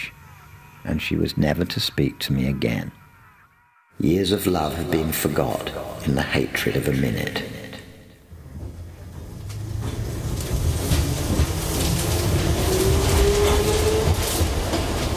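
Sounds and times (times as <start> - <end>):
speech: 0.8 - 3.0, 4.0 - 7.6
underground tube train clattering along rails, heard from inside the carriage: 8.3 - 15.1
rising metallic whine of underground tube train: 8.4 - 14.6.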